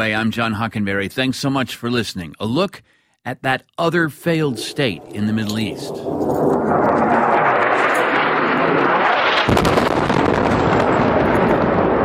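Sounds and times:
speech: 0:00.0 - 0:07.4
crackling rumble after an airstrike blast: 0:04.1 - 0:12.0
airstrike explosion during the Saudi-led war in Yemen: 0:04.5 - 0:12.0.

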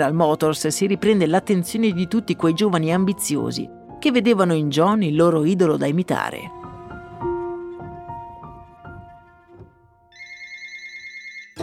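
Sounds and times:
speech: 0:00.0 - 0:06.6
telephone ringing with bright tonal chimes: 0:10.1 - 0:11.6.

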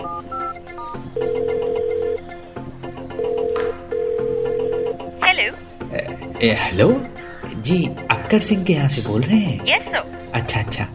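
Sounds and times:
phone dialing beeps: 0:00.0 - 0:02.2, 0:03.2 - 0:05.0
speech: 0:06.4 - 0:10.9.

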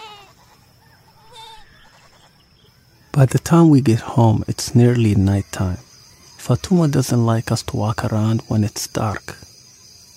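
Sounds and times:
goat bleating: 0:00.0 - 0:02.3
speech: 0:03.2 - 0:05.9, 0:06.5 - 0:09.5.

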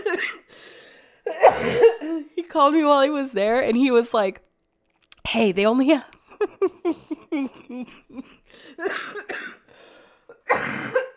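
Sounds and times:
harsh raspy coughs: 0:00.0 - 0:00.5, 0:01.2 - 0:02.2, 0:08.3 - 0:11.1
speech: 0:02.5 - 0:04.5, 0:05.3 - 0:09.4
breathy rhythmic laughter: 0:06.3 - 0:09.2.

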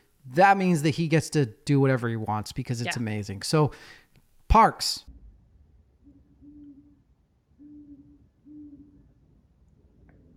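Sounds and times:
speech: 0:00.3 - 0:05.1
owl hooting: 0:06.0 - 0:09.3.

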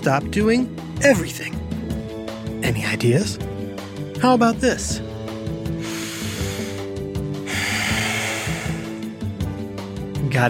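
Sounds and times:
speech: 0:00.0 - 0:01.7, 0:02.6 - 0:03.5, 0:04.2 - 0:05.1
loud deliberate breathing: 0:05.7 - 0:09.4.

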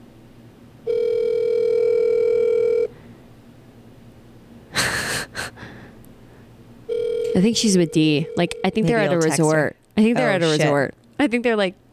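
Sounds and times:
outgoing phone call ringback tone: 0:00.9 - 0:02.9, 0:06.9 - 0:09.2
short breathy puffs or gasps: 0:04.8 - 0:06.4
speech: 0:07.4 - 0:11.8.

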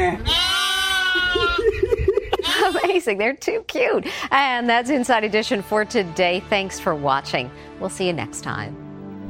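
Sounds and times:
sheep bleating: 0:00.2 - 0:01.6
laughter: 0:01.2 - 0:03.0
speech: 0:03.0 - 0:08.8.

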